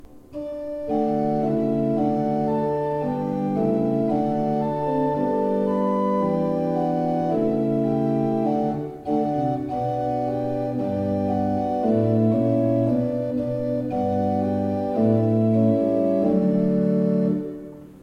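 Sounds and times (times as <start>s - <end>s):
pipe organ: 0.2s - 18.0s.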